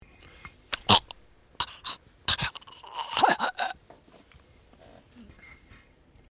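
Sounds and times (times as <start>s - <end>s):
person choking: 0.8s - 3.8s.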